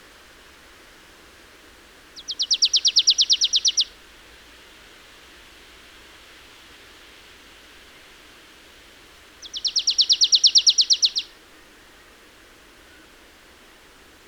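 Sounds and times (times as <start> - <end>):
marsh tit Poecile palustris rattling trill: 2.2 - 3.9, 9.4 - 11.3.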